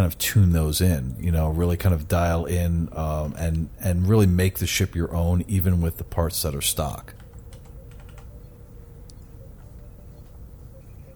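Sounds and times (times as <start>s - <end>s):
speech: 0.0s - 7.2s
steady low hum: 0.0s - 11.1s
several people typing on computer keyboards: 7.1s - 8.4s.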